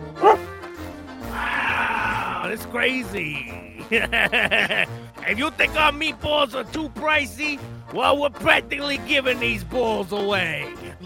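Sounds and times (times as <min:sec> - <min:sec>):
dog whining: 0:00.1 - 0:00.5
dog barking: 0:00.2 - 0:00.5
laughter: 0:01.4 - 0:05.6
speech: 0:02.5 - 0:11.0.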